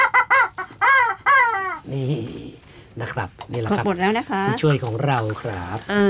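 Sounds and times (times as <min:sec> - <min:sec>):
person imitating chicken clucking and squawking: 0:00.0 - 0:02.0
speech: 0:03.0 - 0:06.0.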